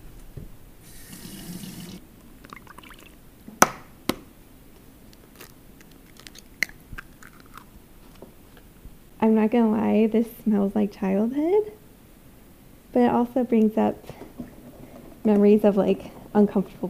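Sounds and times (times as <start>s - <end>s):
water and oil pouring into cake mix: 0.9s - 3.2s
eggs cracking: 5.2s - 7.8s
speech: 9.3s - 11.8s, 13.0s - 14.2s, 15.2s - 16.8s.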